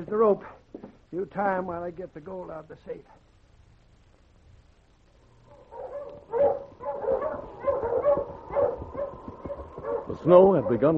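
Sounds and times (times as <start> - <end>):
speech: 0.0 - 3.3, 10.1 - 10.9
strong dog barking: 5.5 - 10.9.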